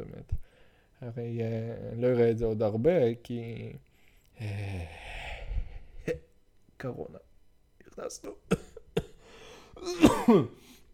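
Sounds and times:
speech: 1.0 - 5.2, 6.1 - 7.2, 8.0 - 8.7, 9.8 - 10.8
fake deliberately acted cough: 8.5 - 9.2, 9.8 - 10.6.

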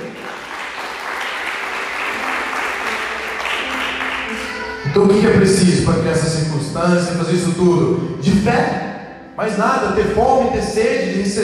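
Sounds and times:
large crowd applauding: 0.0 - 5.2
speech: 5.0 - 8.8, 9.4 - 11.4.

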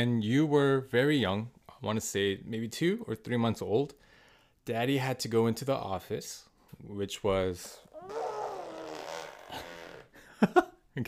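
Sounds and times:
speech: 0.0 - 8.4, 10.4 - 11.0
wet buzzing raspberry blown with the lips by a child: 8.0 - 10.2.

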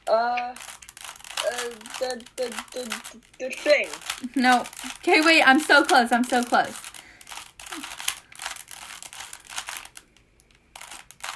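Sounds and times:
speech: 0.1 - 0.7, 1.6 - 6.9
plastic Rubik's Cube being twisted: 0.6 - 11.3.

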